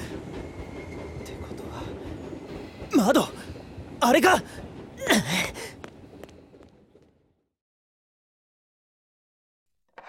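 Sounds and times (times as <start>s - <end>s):
train rumbling along railway tracks: 0.0s - 7.4s
speech: 2.9s - 3.4s, 4.0s - 4.6s.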